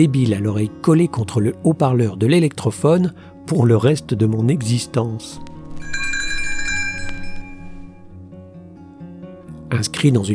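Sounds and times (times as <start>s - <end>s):
speech: 0.0s - 6.0s, 9.7s - 10.3s
tinkling chime of small bells: 5.7s - 8.1s.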